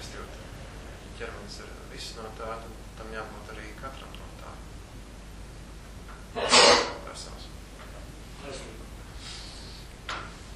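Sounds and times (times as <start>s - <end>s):
low steady hum of room noise: 0.0s - 10.5s
speech: 1.2s - 4.7s, 6.3s - 6.6s
sharp sneeze: 6.4s - 7.0s.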